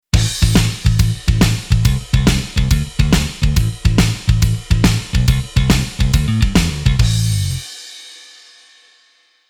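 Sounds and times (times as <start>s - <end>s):
metal bass: 0.2s - 7.7s.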